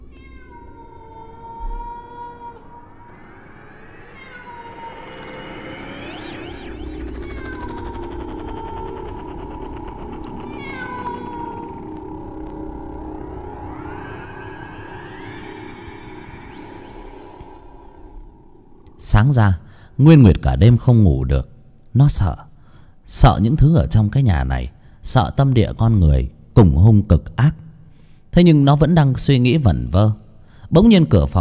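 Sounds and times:
cat meowing mournfully on a courtyard wall at night: 0.0 - 5.1, 6.2 - 12.1
speech: 19.1 - 22.5, 23.1 - 27.6, 28.4 - 31.3.

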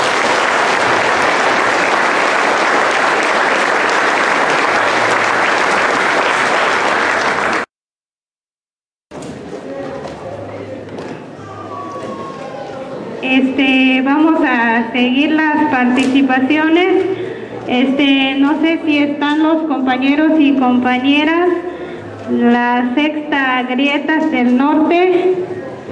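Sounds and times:
audience applause at a gathering of resistance groups: 0.0 - 7.7
murmuring voices: 9.3 - 14.0
speech: 14.8 - 21.6, 22.3 - 25.6.

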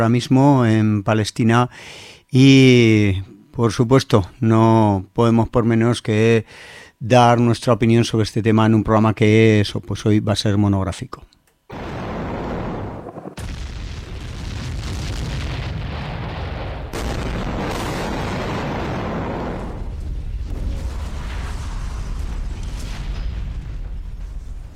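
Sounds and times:
speech: 0.0 - 11.9
explosions over Gaza: 11.7 - 24.7.

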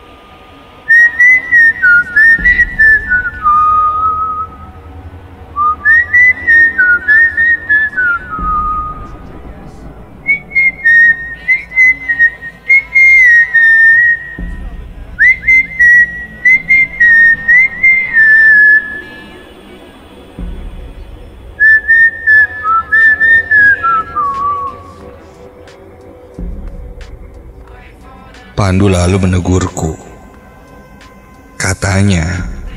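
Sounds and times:
faint music playing softly on a radio inside a house: 0.0 - 32.7
person whistling along to a song inside a house: 0.9 - 4.7, 5.6 - 9.3, 10.2 - 14.6, 15.2 - 19.5, 21.6 - 25.2
speech: 28.7 - 30.0, 32.0 - 32.5.

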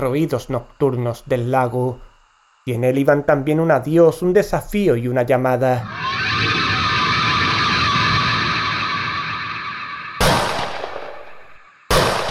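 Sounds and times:
speech: 0.0 - 6.6
loud rushing roar: 5.8 - 11.6
shotgun double blast: 10.2 - 12.2.

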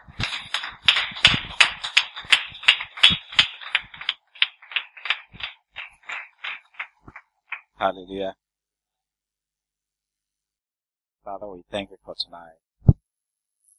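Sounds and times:
church audience clapping to welcome a pastor: 0.0 - 7.8
speech: 7.8 - 8.4, 11.2 - 12.6.

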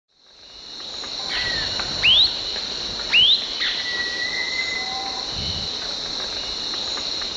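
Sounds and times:
continuous shrill insect-like drone: 0.3 - 7.3
bird song of rising and level whistles: 3.1 - 5.3.

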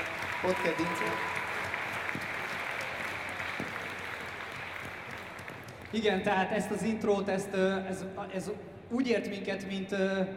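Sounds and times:
applause for a guest who sang an intro song: 0.0 - 6.1
speech: 0.4 - 1.4, 5.9 - 10.3.

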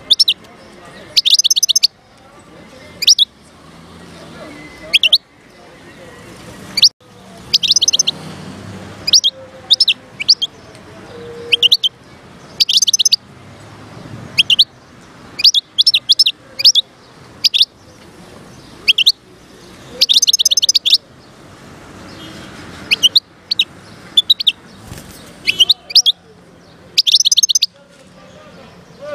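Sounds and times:
wild European goldfinch singing: 0.0 - 2.2, 3.0 - 3.4, 6.7 - 8.2, 9.0 - 13.2, 14.4 - 14.8, 15.4 - 17.8, 18.5 - 21.1, 22.1 - 27.8.

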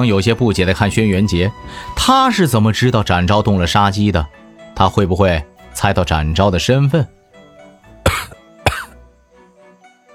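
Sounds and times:
speech: 0.0 - 7.2
faint steady tone: 0.0 - 10.1
man holding a teacup coughing lightly: 8.1 - 9.0.

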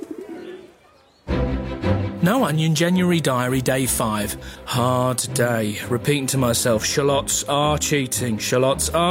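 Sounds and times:
pigeon giving soft low throaty coos: 0.0 - 1.2
speech: 2.2 - 9.0.

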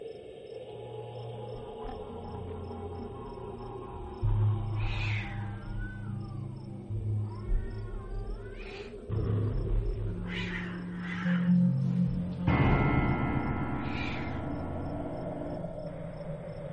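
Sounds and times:
low droning backdrop: 0.0 - 16.7
cat yowling and screeching eerily at night: 4.8 - 6.5, 7.2 - 9.1, 10.2 - 11.7, 13.8 - 14.4.

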